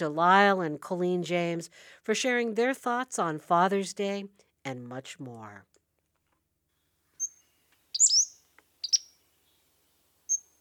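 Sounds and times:
speech: 0:00.0 - 0:05.7
birds chirping: 0:07.2 - 0:10.5.

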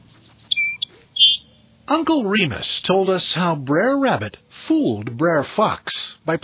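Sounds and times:
song sparrow singing: 0:00.0 - 0:01.8
low hum: 0:00.0 - 0:06.4
speech: 0:01.9 - 0:06.4.

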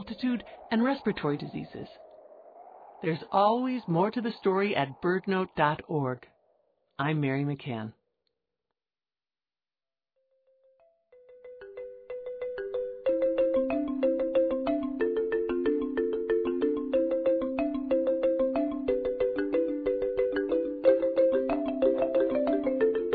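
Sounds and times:
speech: 0:00.1 - 0:02.0, 0:03.0 - 0:06.3, 0:07.0 - 0:08.0
marimba music: 0:11.1 - 0:23.1.

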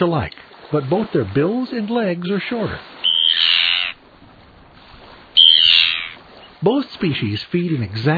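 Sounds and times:
speech: 0:00.0 - 0:03.0, 0:06.6 - 0:08.1
Arctic tern giving long rasping high calls: 0:03.0 - 0:04.0, 0:05.4 - 0:06.6.

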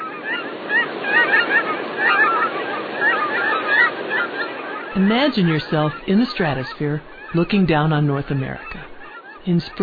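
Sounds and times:
large migrating flock of geese honking: 0:00.0 - 0:09.8
speech: 0:05.0 - 0:09.8.

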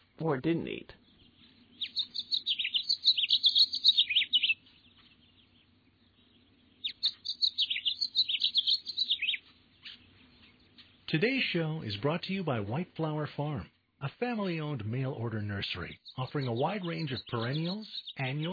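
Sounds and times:
faint low hum: 0:00.0 - 0:18.5
speech: 0:00.2 - 0:01.0, 0:11.1 - 0:18.5
house finch singing: 0:01.0 - 0:12.1, 0:15.6 - 0:18.5.

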